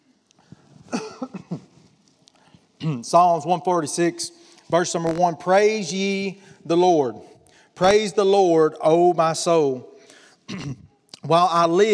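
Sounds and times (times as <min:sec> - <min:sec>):
person coughing with harsh rough hacks: 0:00.9 - 0:01.6, 0:02.8 - 0:03.1, 0:10.5 - 0:11.0
speech: 0:02.8 - 0:09.9, 0:10.5 - 0:11.9.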